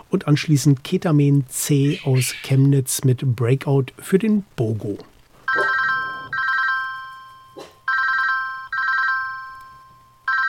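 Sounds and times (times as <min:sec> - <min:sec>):
speech: 0:00.1 - 0:05.1
electronic telephone ringing with an incoming call: 0:05.5 - 0:10.4.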